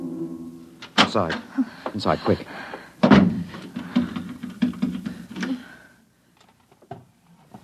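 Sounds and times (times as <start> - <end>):
speech: 1.1 - 2.7
wooden chair scraping and thumping as it is shoved under a doorknob: 3.0 - 5.5.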